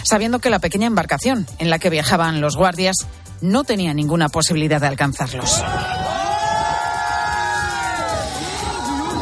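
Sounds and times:
speech: 0:00.0 - 0:06.2
crowd cheering and shouting at a harbour: 0:05.4 - 0:09.2.

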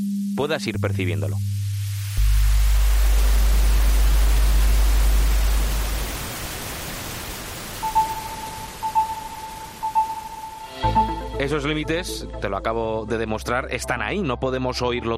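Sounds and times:
speech: 0:00.4 - 0:01.6, 0:11.4 - 0:15.1
deep test tone dropping in pitch: 0:00.7 - 0:11.6
wash of hiss: 0:01.7 - 0:09.8.

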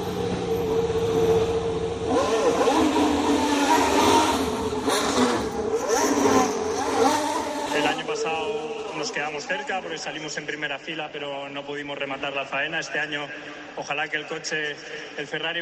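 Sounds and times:
Formula 1 racing car engine revving through gear changes: 0:00.0 - 0:09.5
speech: 0:09.3 - 0:15.6.

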